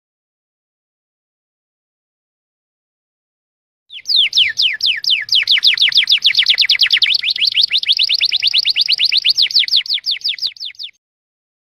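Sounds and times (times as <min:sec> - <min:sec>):
bird whistled song: 0:03.9 - 0:11.0.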